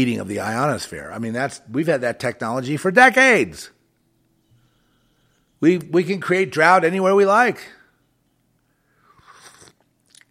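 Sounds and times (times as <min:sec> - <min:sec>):
speech: 0:00.0 - 0:03.8, 0:05.6 - 0:07.8
mouth clicks: 0:09.1 - 0:10.2
slurping hot tea from a cup: 0:09.1 - 0:10.2
swallow: 0:09.1 - 0:10.2.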